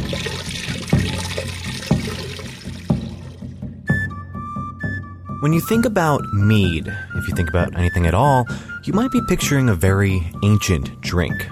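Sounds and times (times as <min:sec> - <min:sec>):
liquid pouring into a vessel: 0:00.0 - 0:03.6
speech: 0:05.4 - 0:11.5.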